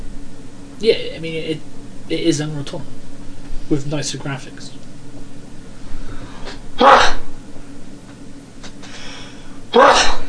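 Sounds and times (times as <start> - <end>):
speech: 0.8 - 3.0, 3.7 - 4.8
person sneezing: 6.5 - 7.3, 9.8 - 10.2.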